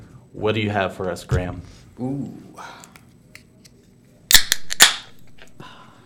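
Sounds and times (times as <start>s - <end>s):
speech: 0.4s - 2.9s
can or bottle of pale ale being opened: 4.3s - 5.3s.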